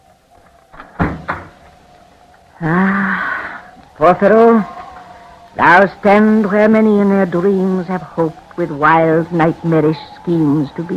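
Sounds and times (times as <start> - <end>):
door hinges creaking: 0.7 - 1.7
speech: 2.6 - 3.1, 4.0 - 4.7, 5.6 - 10.9.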